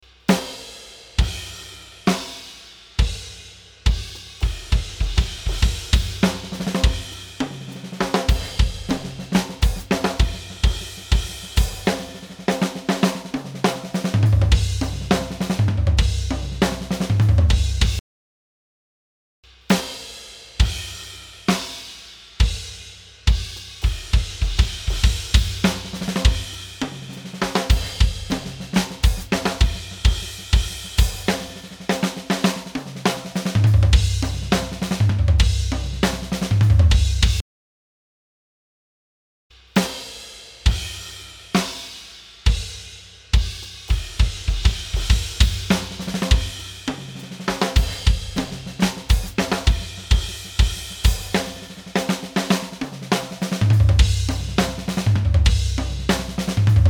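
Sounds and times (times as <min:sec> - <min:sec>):
drum bus with light compression: 0:00.0 - 0:18.0, 0:19.4 - 0:37.4, 0:39.5 - 0:56.8.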